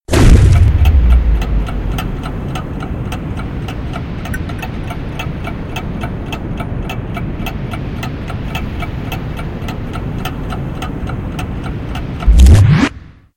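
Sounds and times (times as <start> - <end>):
slow motion sound effect: 0.1 - 3.2, 12.2 - 13.3.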